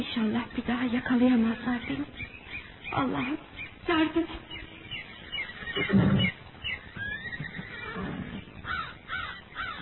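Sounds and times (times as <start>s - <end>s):
speech: 0.0s - 4.6s, 5.8s - 6.3s
horse whinnying beside a stream: 5.0s - 9.8s.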